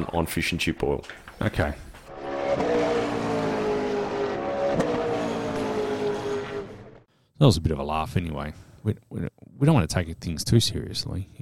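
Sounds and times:
speech: 0.0 - 1.9, 7.4 - 11.4
electric car whirring hum with layered tonal whine: 2.0 - 7.1.

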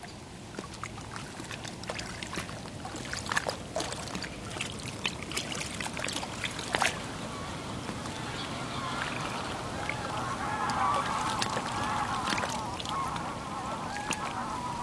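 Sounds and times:
faint background noise: 0.0 - 14.8
goose flock honking flying up from a lake in autumn: 6.9 - 14.8.

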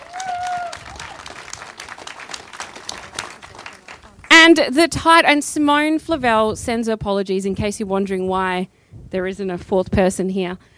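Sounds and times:
crowd applauding: 0.0 - 4.4
speech: 4.5 - 10.7.

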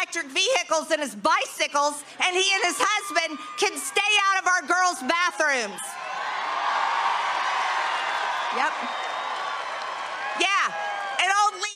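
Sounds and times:
speech: 0.1 - 6.0, 8.5 - 9.0
crowd cheering and applauding: 2.3 - 11.7
loud whoops: 2.5 - 11.2.

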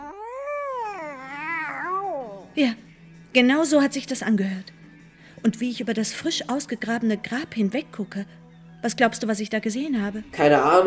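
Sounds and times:
long drawn-out cat meow: 0.0 - 2.6
speech: 2.6 - 4.8, 5.4 - 10.8.

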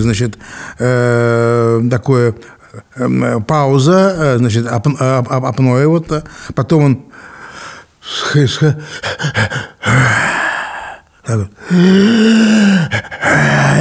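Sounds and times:
speech: 0.0 - 7.3, 8.1 - 10.3, 11.3 - 13.7
voice mimicking a man's sleep apnea with gasps, groans and snoring: 8.9 - 11.0, 11.6 - 13.7.

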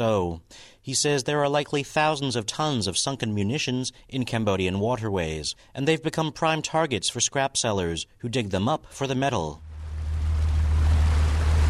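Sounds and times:
speech: 0.0 - 9.7
low engine drone of a small dive boat: 9.6 - 11.6
ocean water washing around a small dive boat off Cambodia's coast: 9.6 - 11.6.

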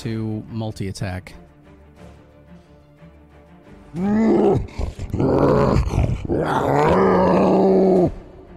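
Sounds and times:
speech: 0.0 - 1.5, 3.9 - 8.2
bear creature roaring in a video game: 3.9 - 8.2.

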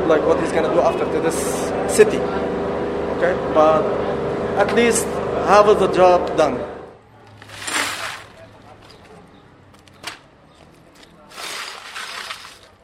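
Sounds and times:
speech: 0.1 - 2.6, 3.2 - 6.7
broken shop window glass shards scraped and swept together: 7.4 - 8.4, 11.3 - 12.7.

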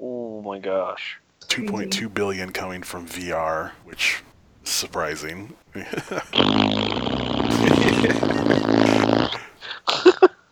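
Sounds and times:
speech: 0.5 - 8.6
person blowing a raspberry imitating a fart: 1.5 - 9.7
laughter: 1.5 - 9.8.

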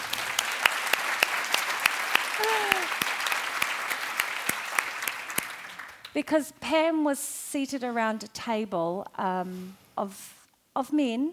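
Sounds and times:
theatre audience applauding: 0.0 - 6.2
person whooping: 2.4 - 3.0
speech: 6.2 - 11.3.

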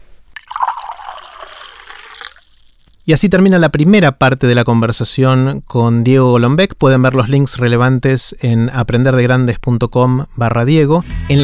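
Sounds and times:
water pouring into a glass: 0.4 - 3.1
speech: 3.1 - 11.4.

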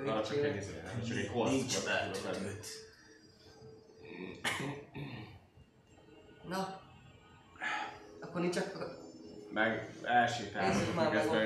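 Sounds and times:
speech: 0.0 - 2.9, 4.3 - 4.8, 6.5 - 6.8, 8.4 - 11.4
person coughing harshly: 4.4 - 5.3.

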